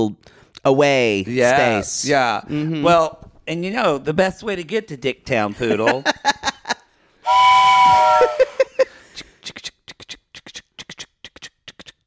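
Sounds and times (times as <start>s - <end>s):
speech: 0.0s - 6.5s
laughter: 5.6s - 6.8s, 8.0s - 9.0s
steam train whistle: 7.2s - 8.7s
steam train chugging puffs: 7.3s - 8.6s.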